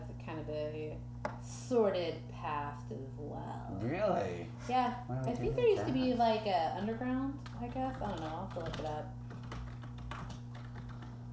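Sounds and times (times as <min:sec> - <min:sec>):
low electrical hum: 0:00.0 - 0:11.3
speech: 0:00.4 - 0:09.2
keyboard typing clicks: 0:07.4 - 0:11.3.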